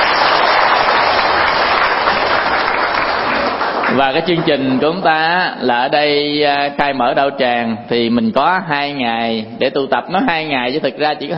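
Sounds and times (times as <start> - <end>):
audience applause at a Buddhist teaching gathering in Germany: 0.0 - 5.1
speech: 4.0 - 11.3.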